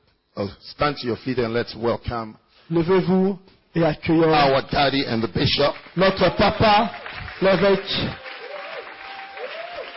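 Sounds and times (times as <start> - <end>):
speech: 0.4 - 8.2
large crowd clapping and applauding: 5.5 - 9.9.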